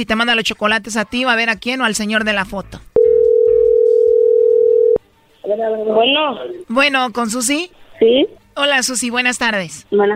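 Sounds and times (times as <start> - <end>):
speech: 0.0 - 2.9, 5.5 - 10.1
telephone dial tone while someone places a call: 3.0 - 5.0.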